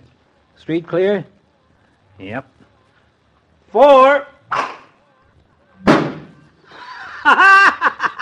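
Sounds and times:
speech: 0:00.6 - 0:01.4, 0:02.2 - 0:02.6, 0:03.7 - 0:04.7
ball hit in a street smacking into a car door: 0:05.8 - 0:06.4
burst of voiced laughter: 0:06.6 - 0:08.2.

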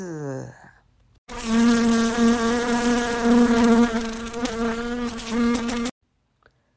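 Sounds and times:
fly buzzing: 0:01.3 - 0:06.0.

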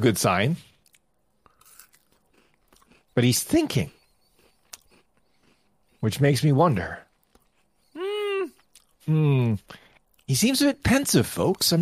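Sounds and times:
speech: 0:00.0 - 0:00.7, 0:03.2 - 0:04.0, 0:06.0 - 0:07.0, 0:09.1 - 0:11.8
person crunching while chewing food: 0:00.7 - 0:06.0, 0:07.0 - 0:09.1, 0:09.7 - 0:10.3.

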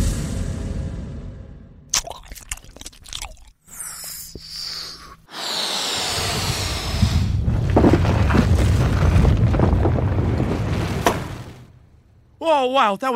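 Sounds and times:
cartoonish bubblegum volcano eruption sound effect: 0:05.4 - 0:11.6
speech: 0:12.6 - 0:13.1.

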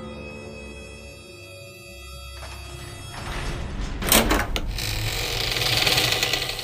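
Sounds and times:
heavy stone cave door rumbling open: 0:03.0 - 0:06.6.

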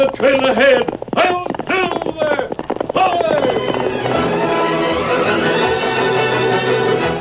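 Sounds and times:
person speaking: 0:00.0 - 0:04.4
horse hoofbeats galloping: 0:00.0 - 0:07.1.

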